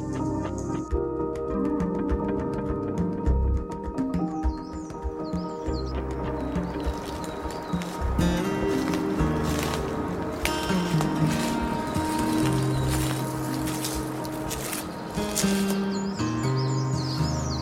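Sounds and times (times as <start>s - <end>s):
steady busy outdoor background: 0.0s - 17.5s
crested tit giving short high trilling calls: 4.5s - 17.5s.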